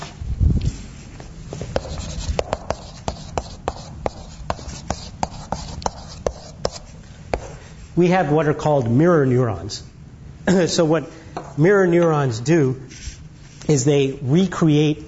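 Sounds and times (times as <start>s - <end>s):
handwriting with crisp scratching ticks: 1.8s - 7.6s
speech: 8.0s - 13.0s, 13.7s - 15.0s.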